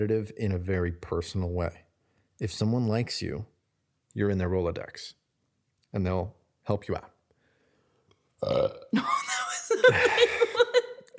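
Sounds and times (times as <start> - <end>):
speech: 0.0 - 1.8, 2.4 - 3.5, 4.2 - 5.2, 5.9 - 7.1, 8.4 - 9.2, 9.9 - 10.3
loud gurgling burp: 8.4 - 8.9
laughter: 9.3 - 11.1.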